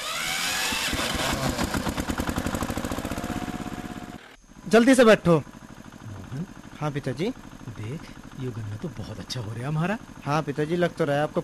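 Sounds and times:
diesel tractor engine starting and idling: 0.0 - 11.4
speech: 4.7 - 5.5, 6.8 - 11.4.

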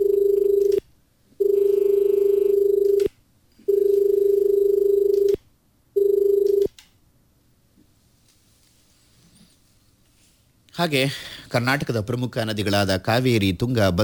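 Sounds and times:
electronic telephone ringing for an incoming call: 0.0 - 0.8, 1.4 - 3.1, 3.7 - 5.3, 6.0 - 6.7
speech: 10.8 - 14.0.

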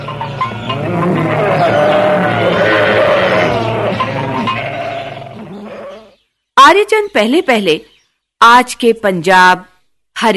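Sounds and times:
flock of sheep and goats bleating: 0.2 - 6.1
cattle mooing: 0.7 - 6.1
speech: 7.2 - 10.3.

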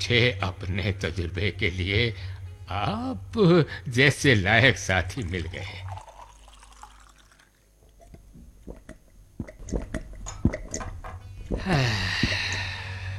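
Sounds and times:
speech: 0.0 - 5.9, 11.5 - 12.2
people sipping and swallowing water: 5.4 - 13.1.

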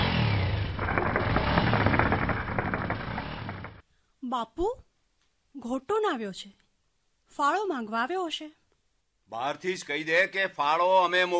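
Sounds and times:
motorcycle engine with its silencer removed roaring: 0.0 - 3.8
speech: 4.3 - 4.8, 5.6 - 6.6, 7.3 - 8.6, 9.3 - 11.3.

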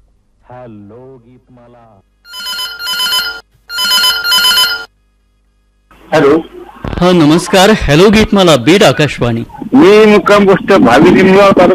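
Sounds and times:
speech: 0.5 - 2.1, 6.1 - 11.7
telephone bell ringing: 2.3 - 4.9.

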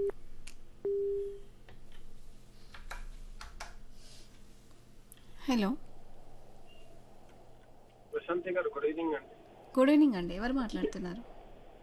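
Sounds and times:
hiss: 0.0 - 11.8
telephone busy tone after a cut-off call: 0.9 - 1.4
speech: 5.5 - 5.9, 8.3 - 11.3.

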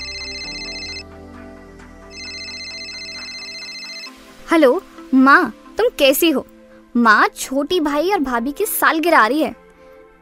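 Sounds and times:
telephone ringing with a bright electronic melody: 0.0 - 1.1, 2.1 - 4.1
speech: 4.5 - 9.6.

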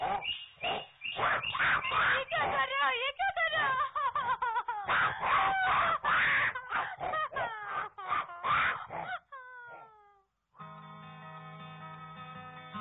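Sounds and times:
voice imitating a weaver bird crying: 0.0 - 2.6, 4.9 - 10.2
laughter: 3.3 - 8.5.

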